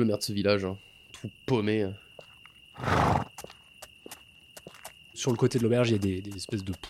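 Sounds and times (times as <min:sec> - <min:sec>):
speech: 0:00.0 - 0:02.0, 0:02.8 - 0:03.2, 0:05.2 - 0:06.8
horse hooves clip-clopping: 0:02.2 - 0:06.8
horse neighing: 0:02.8 - 0:03.3.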